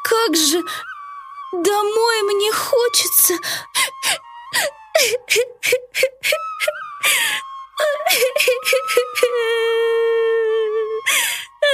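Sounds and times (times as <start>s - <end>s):
speech: 0.2s - 0.9s, 1.5s - 3.8s, 4.5s - 10.4s, 11.1s - 11.7s
girl sobbing and wailing: 2.4s - 11.7s.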